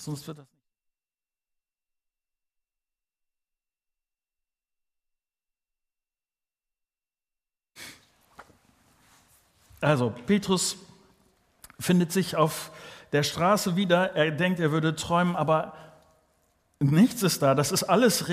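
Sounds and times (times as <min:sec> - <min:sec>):
speech: 0:00.0 - 0:00.6, 0:09.8 - 0:10.9, 0:11.8 - 0:15.8, 0:16.8 - 0:18.3
person blowing their nose: 0:07.8 - 0:08.1.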